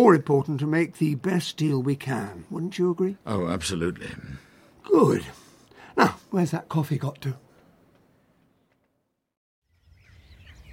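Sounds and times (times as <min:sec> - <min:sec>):
speech: 0:00.0 - 0:05.4, 0:06.0 - 0:07.4
birds singing outdoors: 0:08.4 - 0:08.9, 0:09.7 - 0:10.7.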